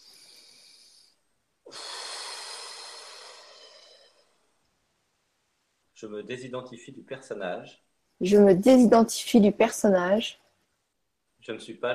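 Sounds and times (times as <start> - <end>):
single long breath: 0.0 - 4.5
speech: 6.0 - 10.4, 11.4 - 11.9.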